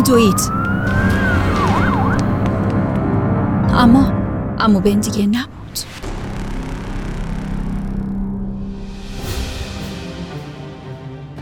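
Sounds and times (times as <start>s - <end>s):
police siren wailing and warbling: 0.0s - 3.2s
heavy rumbling street traffic drone: 0.0s - 11.2s
speech: 0.1s - 1.0s, 3.8s - 5.9s.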